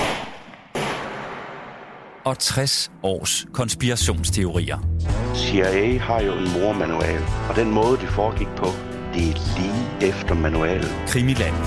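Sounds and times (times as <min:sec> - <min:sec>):
gunshots with long tails: 0:00.0 - 0:02.2
speech: 0:02.3 - 0:11.6.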